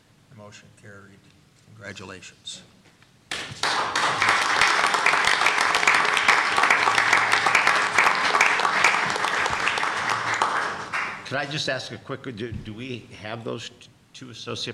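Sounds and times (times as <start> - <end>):
speech: 0.4 - 2.8, 11.3 - 14.7
people at a board of trustees meeting applauding: 3.3 - 11.6.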